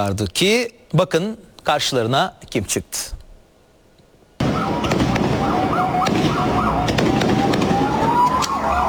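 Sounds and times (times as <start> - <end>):
speech: 0.0 - 3.2
rising whistles of fireworks set off at night in a street: 4.4 - 8.8.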